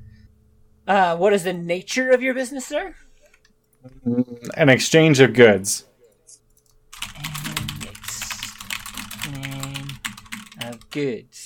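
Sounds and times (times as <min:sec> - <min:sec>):
speech: 0:00.9 - 0:03.1, 0:03.8 - 0:05.9, 0:10.9 - 0:11.4
fast typing on a computer keyboard: 0:06.6 - 0:11.0.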